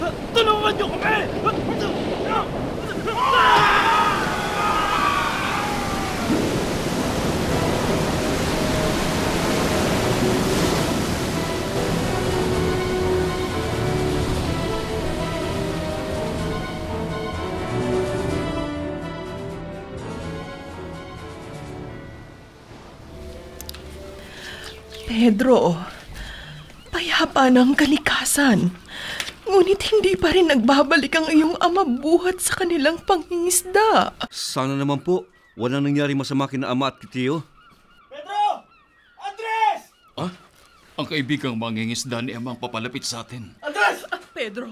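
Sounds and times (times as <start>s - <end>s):
wind: 0.0s - 17.1s, 21.4s - 44.7s
huge ocean wave crashing at sea: 0.0s - 19.4s, 20.0s - 25.2s
speech: 25.3s - 25.8s, 27.4s - 37.5s, 40.2s - 40.4s, 41.0s - 44.7s.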